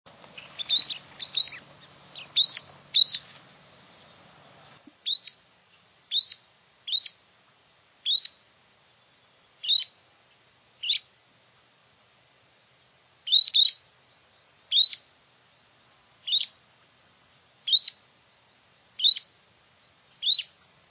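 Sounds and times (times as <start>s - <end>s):
least sandpiper calling: 0.3s - 4.2s, 5.0s - 7.2s, 8.0s - 8.4s, 9.6s - 10.0s, 10.8s - 11.1s, 13.3s - 13.8s, 14.7s - 15.1s, 16.2s - 16.6s, 17.7s - 19.3s, 20.2s - 20.7s.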